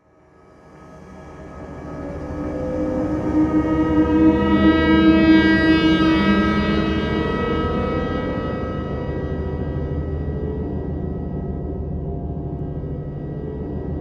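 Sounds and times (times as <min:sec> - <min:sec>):
horror moment sound effect: 0:00.9 - 0:13.9.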